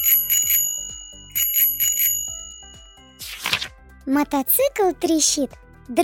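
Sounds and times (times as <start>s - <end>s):
bicycle bell ringing: 0.0s - 3.2s
speech: 4.1s - 6.0s.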